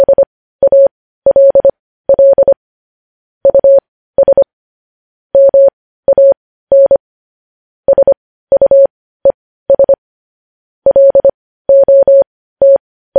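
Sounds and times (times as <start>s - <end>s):
Morse code sent as a single-pitched tone: 0.0s - 2.6s, 3.4s - 4.5s, 5.4s - 7.0s, 7.9s - 10.0s, 10.9s - 13.1s.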